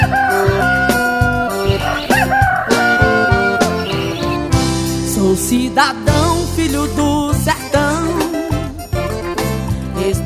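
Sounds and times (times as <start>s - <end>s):
rooster crowing: 0.0s - 4.4s
rhythmic music with thumping beat and sustained tones: 0.0s - 10.2s
speech: 5.4s - 7.6s.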